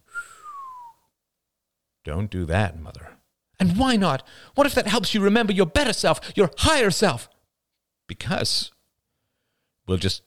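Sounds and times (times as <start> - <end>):
single short human whistle sliding downward in pitch: 0.0 - 1.1
speech: 2.0 - 7.3, 8.1 - 8.8, 9.9 - 10.2.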